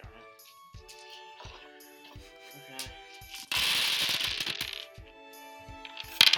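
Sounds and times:
big handful of dice clattering across a hard surface: 0:00.4 - 0:05.0, 0:05.8 - 0:06.3.

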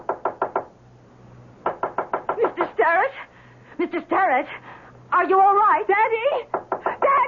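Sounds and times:
firm knocking on a wooden door: 0:00.0 - 0:00.7, 0:01.6 - 0:02.6
speech: 0:03.8 - 0:06.6.

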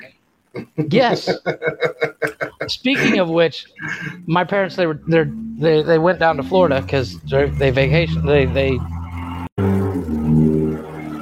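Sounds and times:
speech: 0:00.5 - 0:02.1, 0:02.7 - 0:08.9
laughter: 0:00.6 - 0:04.3
car with rough rumbling bad exhaust roaring by: 0:05.0 - 0:11.1.

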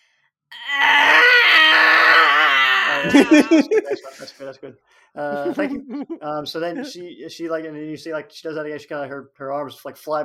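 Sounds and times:
person performing a loud sustained pained scream: 0:00.5 - 0:03.7
short choppy gasping cries: 0:00.5 - 0:04.3
laughter: 0:02.9 - 0:07.0
speech: 0:03.0 - 0:10.2.

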